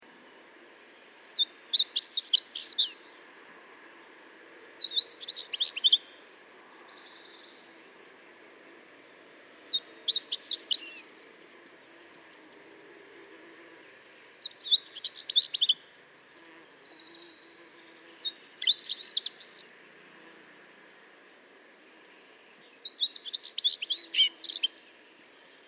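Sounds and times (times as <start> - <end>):
European stonechat singing: 1.4 - 3.1, 4.7 - 6.2, 9.7 - 11.2, 14.2 - 15.9, 16.7 - 19.9, 22.5 - 25.6.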